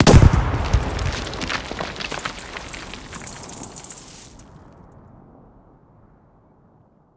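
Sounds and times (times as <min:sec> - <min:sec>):
close explosions: 0:00.0 - 0:04.5.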